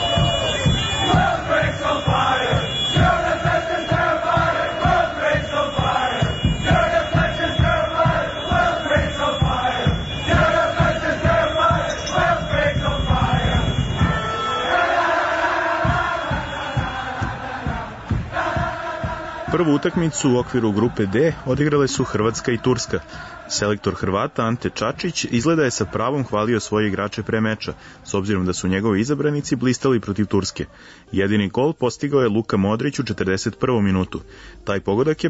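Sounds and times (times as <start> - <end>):
football fans cheering in a stadium: 0.0 - 26.0
large crowd of football fans singing and chanting in a stadium: 0.0 - 31.0
speech: 19.6 - 35.2.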